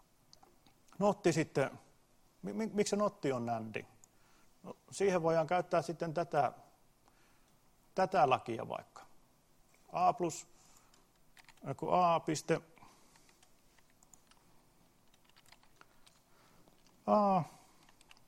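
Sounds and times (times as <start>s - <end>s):
speech: 1.0s - 1.8s, 2.4s - 3.9s, 4.6s - 6.6s, 8.0s - 9.0s, 9.9s - 10.5s, 11.6s - 12.7s, 17.1s - 17.6s
computer keyboard typing of a math formula during a lesson: 10.8s - 11.7s, 13.1s - 17.0s, 17.8s - 18.2s.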